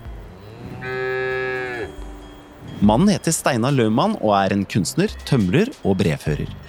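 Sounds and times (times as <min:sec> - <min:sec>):
faint outdoor noise: 0:00.0 - 0:06.6
cow mooing: 0:00.5 - 0:02.0
speech: 0:02.8 - 0:06.6.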